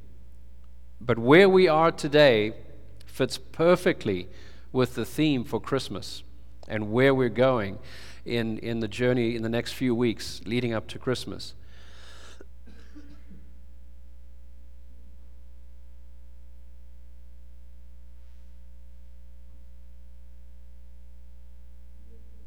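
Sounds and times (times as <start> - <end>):
steady low electrical hum: 0.0 - 22.4
speech: 1.0 - 2.6, 3.2 - 11.6
coughing and throat clearing: 12.3 - 13.6.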